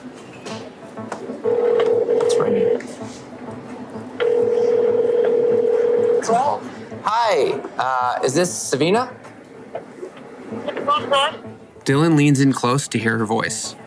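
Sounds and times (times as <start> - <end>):
telephone ringback tone while a call is placed: 1.4 - 2.8, 4.2 - 6.4
speech: 7.3 - 9.2, 11.1 - 13.8.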